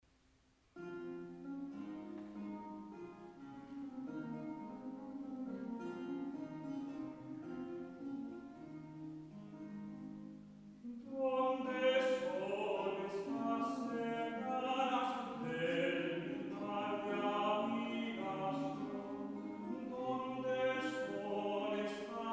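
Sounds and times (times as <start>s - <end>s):
guitar: 0.7s - 22.3s
person singing: 10.8s - 22.3s.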